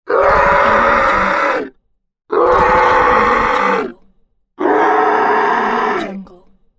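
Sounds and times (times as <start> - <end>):
zombie screaming angrily: 0.1 - 1.7, 2.3 - 3.9, 4.6 - 6.1.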